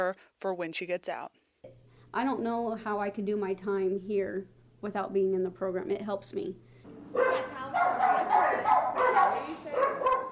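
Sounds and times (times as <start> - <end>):
speech: 0.0 - 8.1
dog from an animal shelter barking: 7.1 - 10.3.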